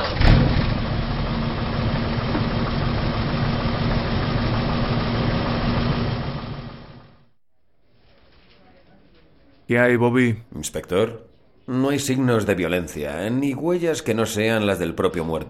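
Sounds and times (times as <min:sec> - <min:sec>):
old Studebaker car engine roaring at night: 0:00.0 - 0:07.3
speech: 0:09.7 - 0:15.4.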